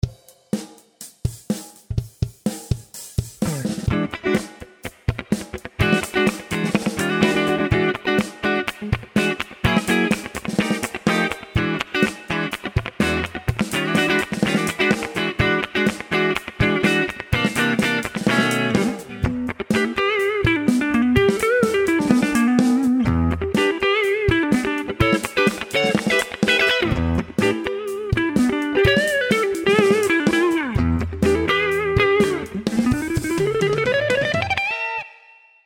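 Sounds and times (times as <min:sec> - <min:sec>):
clean funky guitar on the neck: 0:02.0 - 0:35.4.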